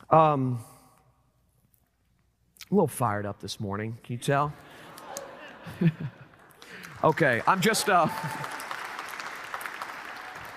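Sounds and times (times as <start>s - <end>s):
speech: 0.1s - 0.7s, 2.7s - 4.8s, 5.7s - 6.2s, 7.0s - 8.6s
laughter: 4.6s - 6.8s
audience applause: 6.6s - 10.5s.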